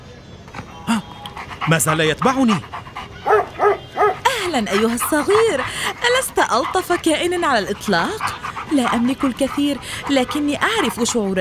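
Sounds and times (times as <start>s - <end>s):
small dog soft panting and faint snuffling: 1.3s - 11.3s
speech: 1.6s - 2.8s, 4.5s - 11.3s
small stray dog giving a short sharp bark: 3.2s - 4.3s.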